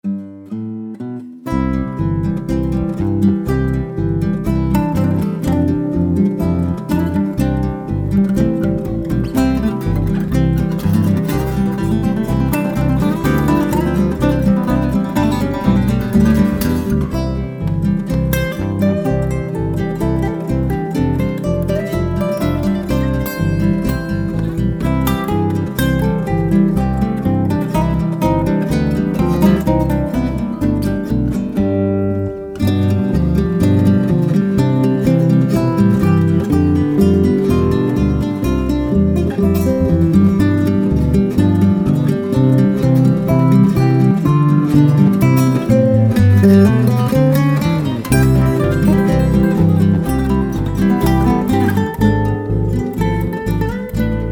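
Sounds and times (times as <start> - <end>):
musical study piece in C: 0.0 - 54.3.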